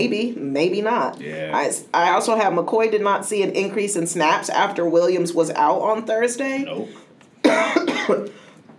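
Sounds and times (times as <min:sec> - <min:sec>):
speech: 0:00.0 - 0:08.4
harsh cough: 0:07.4 - 0:08.6.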